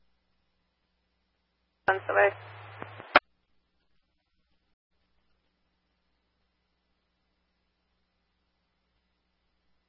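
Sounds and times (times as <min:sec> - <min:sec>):
speech: 0:01.9 - 0:02.5
hissy radio static: 0:01.9 - 0:03.2.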